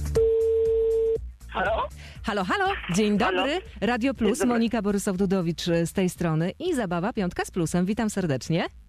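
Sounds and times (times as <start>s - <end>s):
telephone ringback tone during outgoing call: 0.2s - 1.2s
music: 1.4s - 8.8s
speech: 1.5s - 8.8s.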